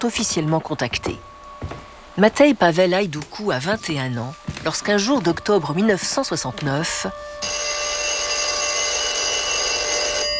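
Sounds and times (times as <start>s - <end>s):
speech: 0.0s - 7.6s
old telephone bell ringing: 7.4s - 10.3s.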